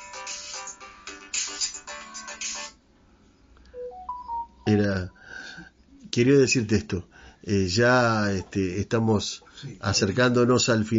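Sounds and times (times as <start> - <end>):
telephone ringtone with melodic electronic notes: 3.8 - 4.8
speech: 4.7 - 10.9.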